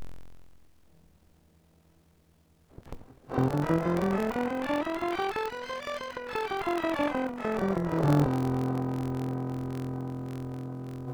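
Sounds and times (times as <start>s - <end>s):
distorted C scale: 3.3s - 11.1s.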